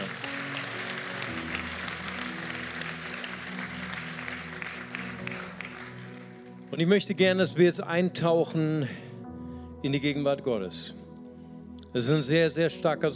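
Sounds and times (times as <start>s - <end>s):
audience applause: 0.0s - 6.6s
soft sustained keyboard chords: 0.0s - 13.1s
speech: 6.8s - 9.0s, 9.8s - 11.0s, 11.9s - 13.1s.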